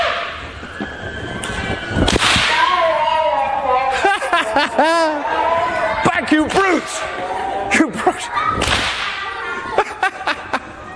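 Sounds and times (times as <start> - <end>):
whip cracking: 1.4 - 2.7, 8.6 - 9.2
laughter: 3.0 - 10.9.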